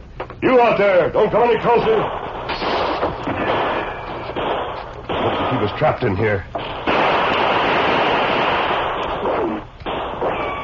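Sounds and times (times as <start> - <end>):
speech: 0.4 - 2.3, 5.6 - 6.9
gunfire from every side of a besieged building: 1.7 - 5.9, 6.6 - 10.6.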